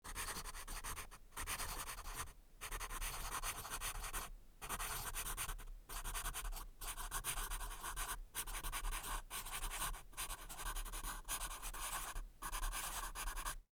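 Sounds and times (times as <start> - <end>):
pencil writing notes: 0.1 - 13.6.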